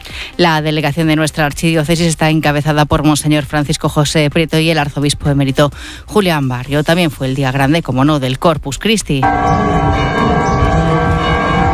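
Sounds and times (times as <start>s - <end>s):
speech: 0.4s - 10.2s
church bells in A Coruña ringing for the start of a Corpus Christi procession: 9.2s - 11.7s.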